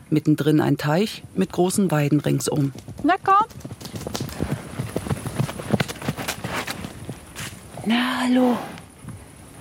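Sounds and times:
speech: 0:00.1 - 0:03.8, 0:07.9 - 0:08.8
two ponies' hooves trotting on a lush green meadow: 0:00.3 - 0:07.9
rustling as the ponies move: 0:00.7 - 0:09.5.

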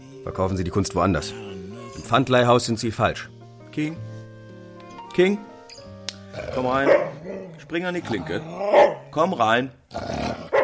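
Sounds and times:
speech: 0:00.2 - 0:04.1, 0:05.2 - 0:05.5, 0:06.4 - 0:10.2
dog growling and snarling in a pawnshop: 0:06.3 - 0:09.2, 0:09.9 - 0:10.6.

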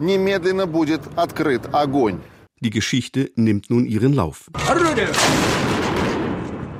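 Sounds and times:
speech: 0:00.0 - 0:06.1
cruiser bow cannon firing a shot: 0:05.1 - 0:06.7.

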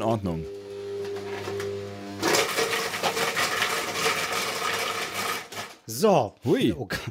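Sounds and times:
speech: 0:00.0 - 0:00.6, 0:05.9 - 0:07.1
blender chopping roasted vegetables: 0:00.5 - 0:05.8.

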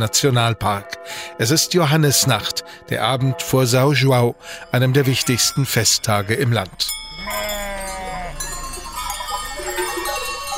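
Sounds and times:
speech: 0:00.0 - 0:07.6
faint clink of bells: 0:00.0 - 0:10.5
sheep and goat herd bleating: 0:06.9 - 0:10.5.

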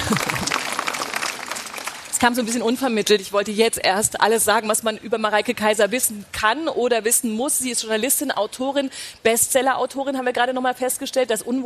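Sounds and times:
laughter: 0:00.0 - 0:00.7
audience applause at a book fair in an exhibition hall: 0:00.0 - 0:02.2
speech: 0:02.2 - 0:11.6.

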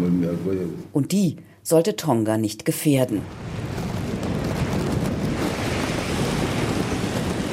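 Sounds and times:
speech: 0:00.3 - 0:03.7
waves spraying through volcanic rock blowholes: 0:03.2 - 0:07.5
wind buffeting: 0:03.2 - 0:07.5.

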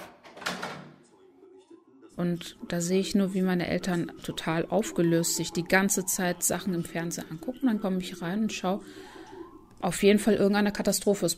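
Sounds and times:
front door being unlocked with clattering metal and wood: 0:00.0 - 0:01.0
speech: 0:02.2 - 0:09.1, 0:09.8 - 0:11.3
faint murmur: 0:04.0 - 0:10.0.

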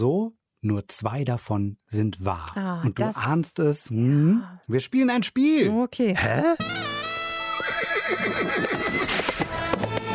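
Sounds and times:
speech: 0:00.0 - 0:06.8, 0:08.1 - 0:09.2
horse whinnying: 0:07.4 - 0:09.5.

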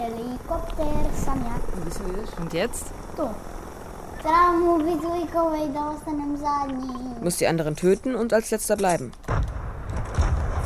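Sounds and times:
voice imitating a helicopter: 0:00.0 - 0:03.5, 0:04.2 - 0:07.3
speech: 0:00.0 - 0:03.6, 0:04.2 - 0:09.3.

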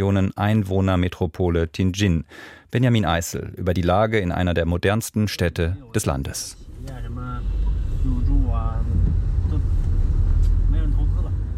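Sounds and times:
speech: 0:00.0 - 0:09.0
low rumble of a car on the move in a city: 0:05.7 - 0:11.5
city traffic noise: 0:06.6 - 0:11.5.

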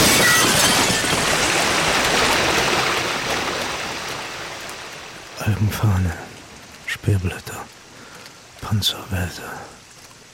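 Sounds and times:
cracked glass bursting under water pressure: 0:00.0 - 0:02.7
loud steady rush of gushing water: 0:00.0 - 0:10.3
speech: 0:05.6 - 0:06.3, 0:07.0 - 0:07.8, 0:08.6 - 0:09.8.

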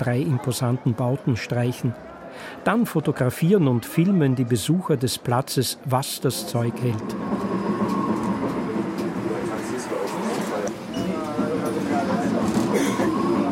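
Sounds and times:
speech: 0:00.0 - 0:07.4
tram rolling along its rails in Samarkand: 0:05.8 - 0:13.5.

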